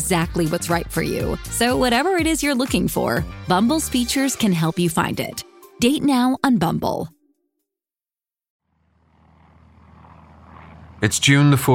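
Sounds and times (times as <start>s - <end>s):
speech: 0.1s - 7.2s, 11.0s - 11.7s
large silver propeller transport plane engine droning on approach to airfield: 8.7s - 11.7s.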